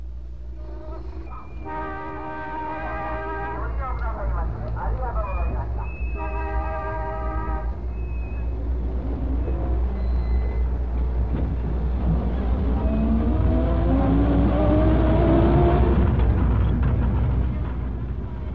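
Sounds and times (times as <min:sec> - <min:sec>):
bus engine droning while driving along a coastal road: 0:00.0 - 0:18.5.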